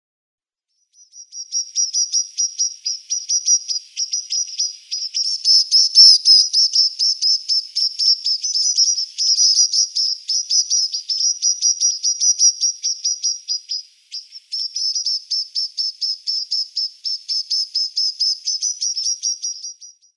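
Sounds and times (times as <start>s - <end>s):
snowfinch nestlings: 1.0s - 20.1s.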